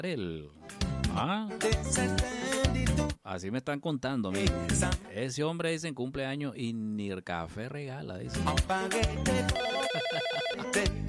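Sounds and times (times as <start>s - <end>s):
speech: 0.0s - 0.6s, 1.2s - 11.0s
telephone ringing for an incoming call: 9.5s - 10.9s.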